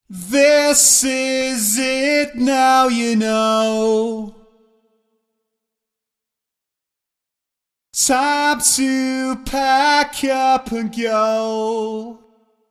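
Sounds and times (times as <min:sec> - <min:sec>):
processed vocal: 0:00.0 - 0:04.7, 0:08.0 - 0:12.4.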